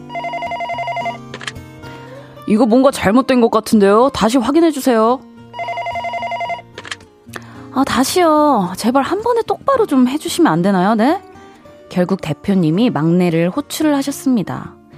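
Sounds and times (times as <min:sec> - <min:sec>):
telephone ringing with an electronic trill: 0:00.0 - 0:01.2, 0:05.5 - 0:06.8
speech: 0:02.5 - 0:05.3, 0:07.8 - 0:11.3, 0:11.9 - 0:14.8.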